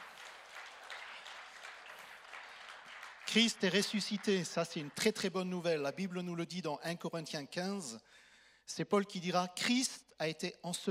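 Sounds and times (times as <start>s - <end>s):
church congregation applauding: 0.0s - 5.6s
speech: 3.3s - 10.8s.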